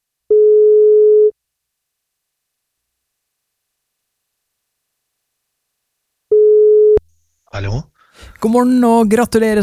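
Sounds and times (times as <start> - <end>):
telephone ringback tone during outgoing wake-up call: 0.3 - 1.3, 6.3 - 7.0
speech: 7.6 - 9.6.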